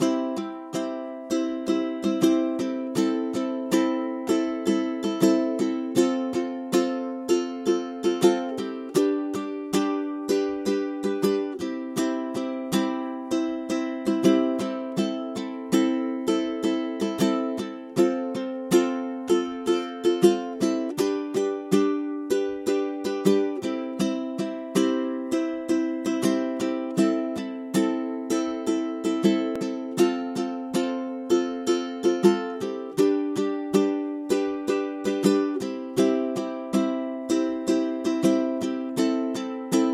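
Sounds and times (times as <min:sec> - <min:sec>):
ukulele strumming: 0:00.0 - 0:39.9.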